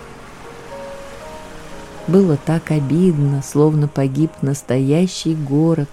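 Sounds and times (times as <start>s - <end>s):
surf washing onto a shore: 0.0s - 3.7s
faint tonal hum: 0.0s - 5.9s
speech: 2.1s - 5.9s.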